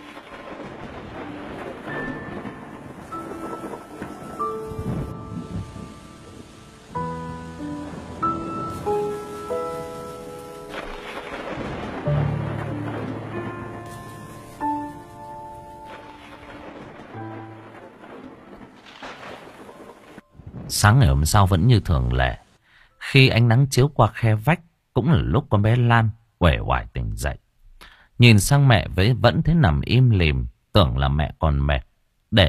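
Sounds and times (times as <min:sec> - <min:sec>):
soft melodic music notes: 0:00.0 - 0:18.6
low rumbling thunder: 0:00.0 - 0:22.2
steady rain from a thunderstorm: 0:00.0 - 0:22.6
speech: 0:20.8 - 0:22.4, 0:23.1 - 0:27.4, 0:28.2 - 0:32.4.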